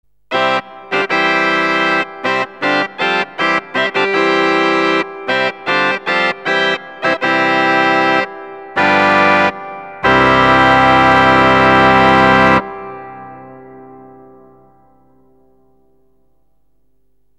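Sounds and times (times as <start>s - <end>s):
organ reed stops plenum playing: 0.3s - 13.9s.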